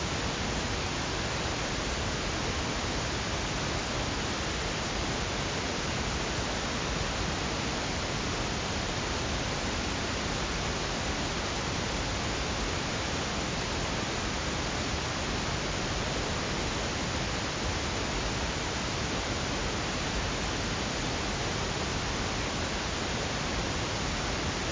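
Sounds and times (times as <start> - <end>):
stereo pink noise: 0.0 - 24.7.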